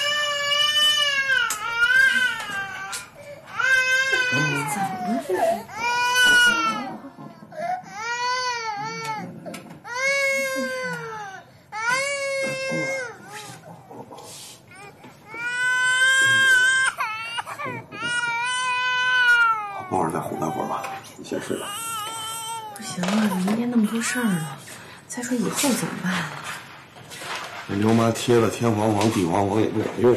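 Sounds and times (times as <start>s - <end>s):
baby crying after being laid down in a small crib: 0.0s - 13.8s, 14.7s - 24.6s
speech: 4.3s - 7.1s, 24.1s - 24.6s, 25.3s - 26.4s, 27.8s - 30.1s.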